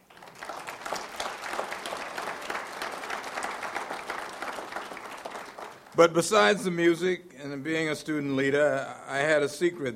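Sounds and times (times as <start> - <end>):
large audience applauding: 0.0 - 6.6
speech: 6.0 - 9.9.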